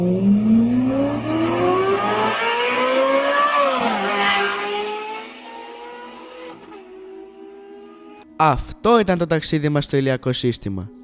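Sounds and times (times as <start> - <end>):
Ferrari Formula 1 race car engine screaming at high revs: 0.0 - 7.7
speech: 8.4 - 11.0.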